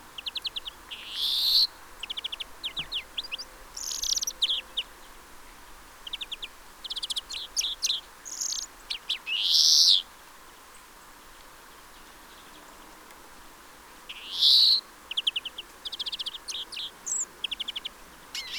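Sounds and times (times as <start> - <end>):
European greenfinch Chloris chloris twittering trills and chirps: 0.2 - 4.9, 6.0 - 10.0, 14.1 - 18.5.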